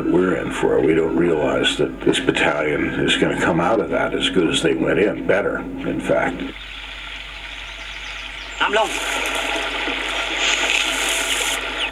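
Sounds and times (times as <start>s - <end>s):
speech: 0.0s - 6.6s, 8.7s - 9.3s
dense rush of fast-flowing river water: 6.5s - 11.8s.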